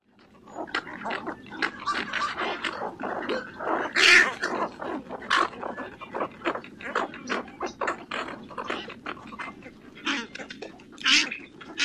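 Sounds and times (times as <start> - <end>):
Cattle Egret colony calls: 0.2 - 11.8.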